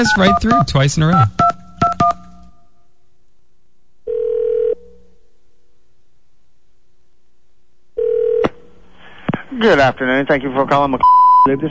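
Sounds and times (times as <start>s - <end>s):
speech: 0.0s - 1.5s, 9.6s - 11.7s
telephone keypad beeps: 0.0s - 2.2s
telephone line ringing tones: 0.0s - 2.3s, 4.1s - 4.8s, 8.0s - 8.4s.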